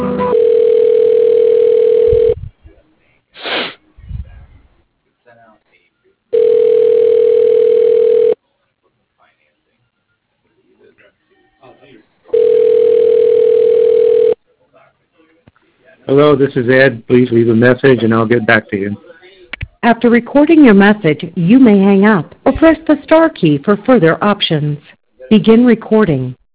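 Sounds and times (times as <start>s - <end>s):
telephone ringback tones while a call is being transferred: 0.2s - 2.4s, 6.3s - 8.4s, 12.3s - 14.4s
speech: 16.3s - 19.1s, 19.9s - 26.4s.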